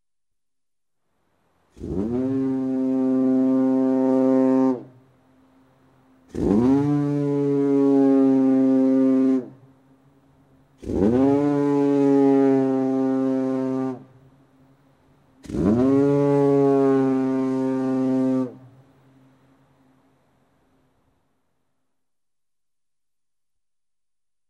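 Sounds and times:
lighthouse foghorn in fog: 1.8s - 5.6s, 6.3s - 9.7s, 10.8s - 14.2s, 15.4s - 19.0s.

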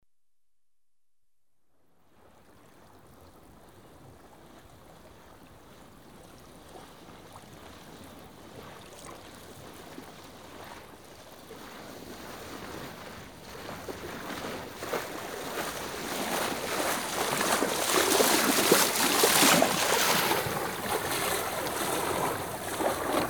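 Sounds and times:
ship sailing past right to left: 9.6s - 23.2s.

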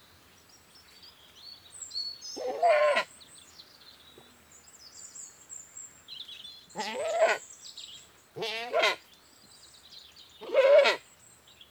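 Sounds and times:
faint birdsong: 0.0s - 11.6s
British goat bleating: 2.4s - 3.1s, 6.8s - 7.4s, 8.4s - 9.0s, 10.5s - 11.0s.

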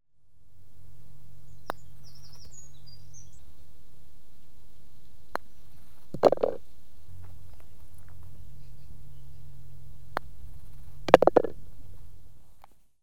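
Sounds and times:
birdsong: 1.4s - 3.7s, 6.6s - 10.2s
golf putting shots: 6.1s - 6.6s, 11.1s - 11.6s.

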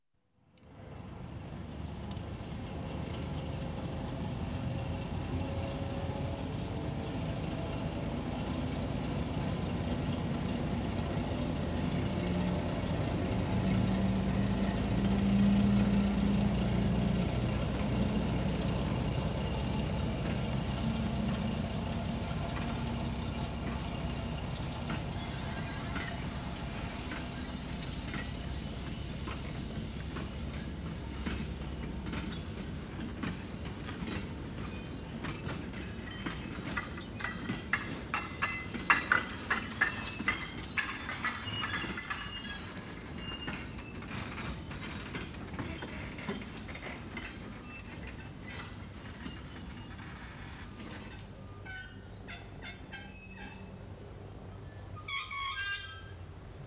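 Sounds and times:
diesel trains shunting trucks: 0.8s - 56.6s.

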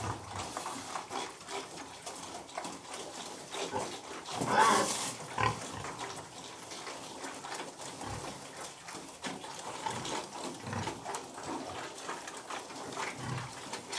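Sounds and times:
pigs grunting and snuffling while feeding: 0.0s - 13.9s
pig squealing: 3.6s - 5.7s.

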